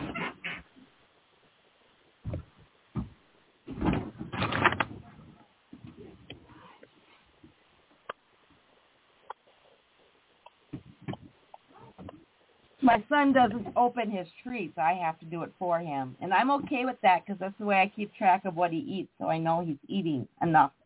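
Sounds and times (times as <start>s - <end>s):
door pushed shut with thuds: 2.2s - 5.2s
quieter scattered knocks: 2.2s - 6.4s
speech: 12.9s - 20.8s.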